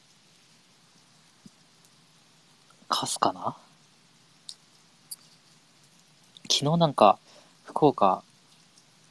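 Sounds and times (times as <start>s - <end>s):
heavy rain: 0.0s - 9.0s
speech: 3.0s - 3.6s, 6.6s - 8.3s
sharp drip or tap: 4.4s - 6.5s.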